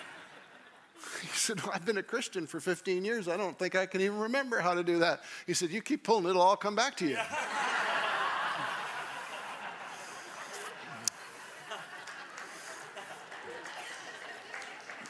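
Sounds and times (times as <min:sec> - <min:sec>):
crowd laughing with chuckles and snickers: 0:00.0 - 0:01.8, 0:07.1 - 0:15.0
speech: 0:01.5 - 0:07.6
crowd clapping: 0:09.9 - 0:15.0.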